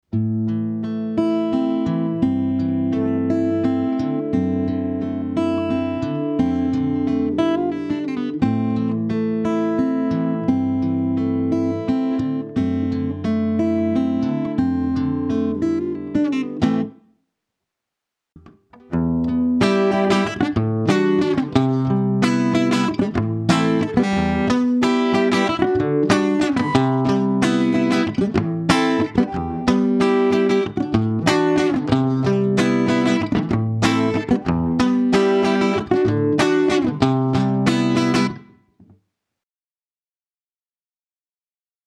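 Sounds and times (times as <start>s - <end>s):
Martin O 18 guitar: 0.0s - 17.1s, 18.4s - 39.0s.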